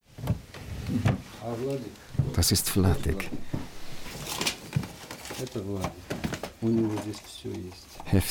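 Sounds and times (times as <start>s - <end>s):
speech: 0.9s - 3.6s, 5.4s - 8.2s
wooden desk drawer scraping open: 3.2s - 6.4s.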